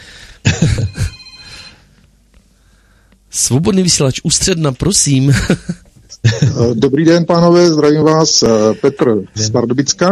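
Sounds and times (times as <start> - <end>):
telephone ringing for an incoming call: 0.6 - 2.0
speech: 3.4 - 10.0.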